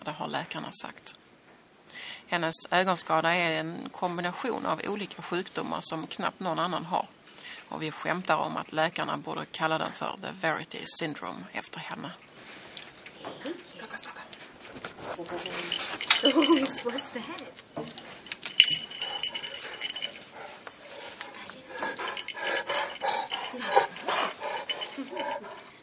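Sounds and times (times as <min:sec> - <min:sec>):
speech: 0:00.0 - 0:01.3, 0:02.3 - 0:12.5, 0:13.2 - 0:18.1
Leonberger guide dog panting: 0:13.9 - 0:25.8
scuffling movement noises: 0:14.4 - 0:22.3.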